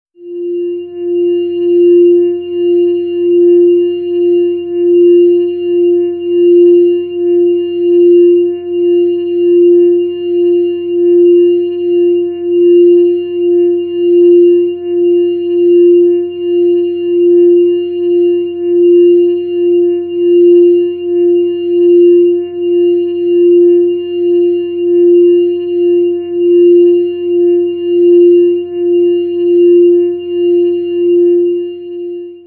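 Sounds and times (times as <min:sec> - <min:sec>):
organ tone F: 0:00.2 - 0:32.4.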